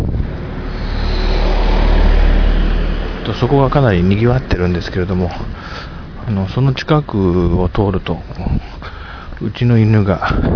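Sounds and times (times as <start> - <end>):
car passing by on a neighborhood street near a local community hall: 0.0 - 6.2
speech: 3.4 - 8.7, 9.4 - 10.5.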